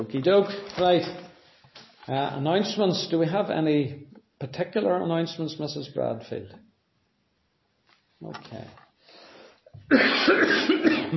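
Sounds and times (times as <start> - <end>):
speech: 0.0 - 1.3, 2.1 - 6.7, 8.2 - 8.8, 9.9 - 11.1
person coughing from a tickle in the throat: 9.8 - 11.1.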